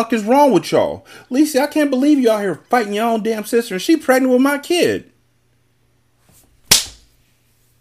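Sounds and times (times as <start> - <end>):
speech: 0.0 - 5.1
hard slap: 6.6 - 7.2.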